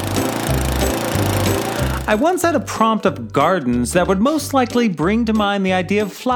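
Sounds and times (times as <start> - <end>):
lawnmower engine running: 0.0 - 2.4
speech: 2.1 - 6.3.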